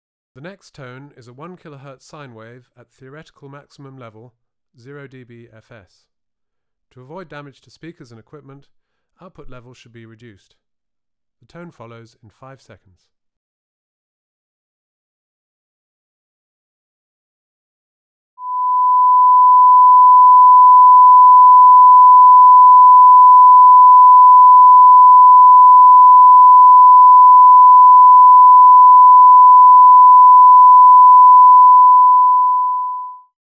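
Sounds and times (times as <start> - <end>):
1 kHz sine wave tone at 0dB FS: 18.4 - 33.4.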